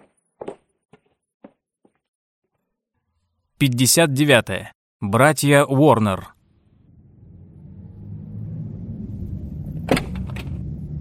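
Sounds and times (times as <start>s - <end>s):
speech: 3.6s - 6.4s
low steady car rumble: 6.4s - 10.9s.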